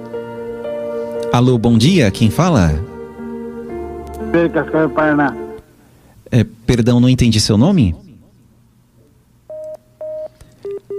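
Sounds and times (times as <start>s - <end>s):
faint hiss: 0.0s - 10.9s
speech: 1.3s - 2.9s, 4.3s - 5.4s, 6.3s - 8.0s
electronic telephone beeps of a phone line going dead: 9.5s - 10.9s.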